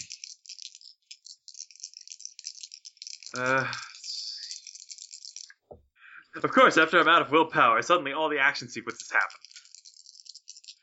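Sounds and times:
dice rattling and being rolled: 0.0s - 5.6s, 8.8s - 10.8s
speech: 3.3s - 3.8s, 6.4s - 9.4s.

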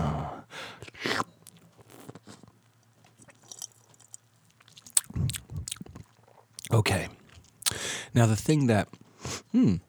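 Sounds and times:
person sipping and slurping a foamy beer: 0.0s - 2.4s, 4.6s - 8.0s
speech: 6.8s - 7.2s, 8.1s - 9.8s.

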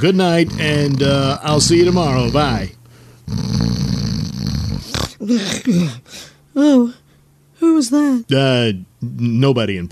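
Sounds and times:
speech: 0.0s - 4.0s, 5.2s - 7.0s, 7.6s - 9.9s
person snoring: 0.4s - 6.3s
short snort: 3.3s - 5.2s.

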